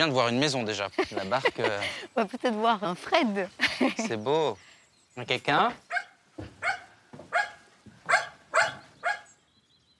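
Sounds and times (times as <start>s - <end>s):
speech: 0.0s - 6.5s
laughter: 0.6s - 2.2s, 3.6s - 4.3s
dog barking in the countryside: 5.9s - 9.4s.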